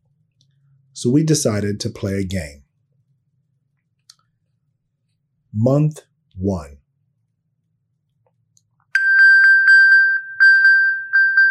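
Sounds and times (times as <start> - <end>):
speech: 1.0 - 2.6, 5.5 - 6.8
phone ringing with a bell-like chime after being pinged from a watch: 9.0 - 11.4.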